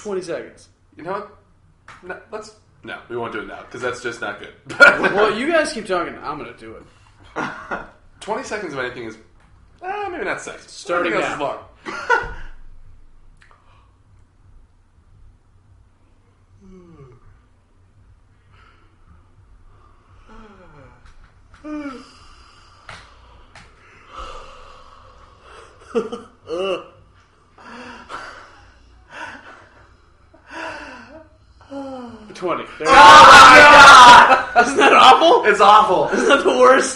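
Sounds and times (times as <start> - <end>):
speech: 0.0 - 12.4, 26.0 - 26.9, 32.7 - 33.3, 34.3 - 36.9
person yawning with mouth held wide open: 16.6 - 17.3, 21.6 - 22.4, 26.5 - 27.0.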